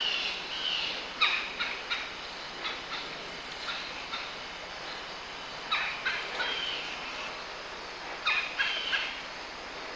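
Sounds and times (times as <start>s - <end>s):
bird chattering clicking calls: 0.0s - 5.1s, 5.7s - 7.3s, 8.2s - 9.2s
steady rushing background noise: 0.0s - 9.9s.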